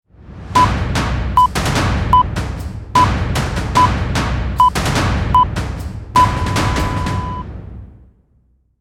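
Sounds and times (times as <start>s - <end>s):
cinematic countdown: 0.6s - 7.5s.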